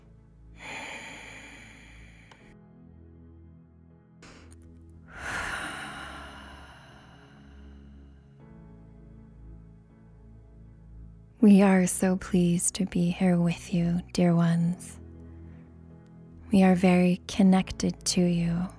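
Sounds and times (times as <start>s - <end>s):
slow deep breathing during a guided meditation: 0.5s - 2.6s, 4.2s - 8.3s
speech: 11.4s - 15.0s, 16.5s - 18.7s.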